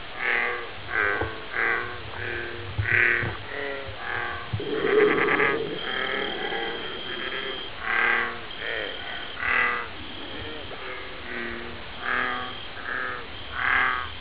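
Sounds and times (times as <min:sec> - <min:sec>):
American bullfrog croaking deep harmonic notes: 0:00.0 - 0:14.1.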